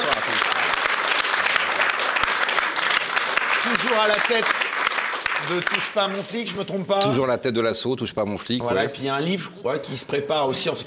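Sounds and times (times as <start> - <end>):
audience applauding: 0.0 - 6.5
speech: 3.6 - 4.6, 5.4 - 10.8.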